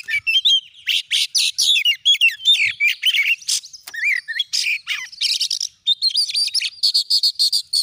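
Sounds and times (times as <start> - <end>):
Oriental magpie-robin song: 0.0 - 7.8.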